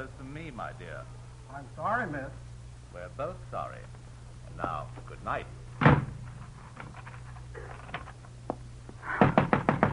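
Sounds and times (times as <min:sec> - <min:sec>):
low steady hum: 0:00.0 - 0:09.9
speech: 0:00.5 - 0:04.0, 0:04.6 - 0:06.0
knocking on a locked door: 0:09.2 - 0:09.9.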